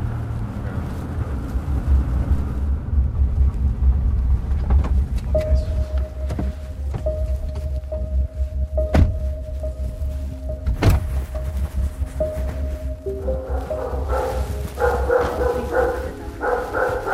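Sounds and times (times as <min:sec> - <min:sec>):
low rumbling background: 0:00.0 - 0:17.1
large dog barking: 0:13.5 - 0:17.1.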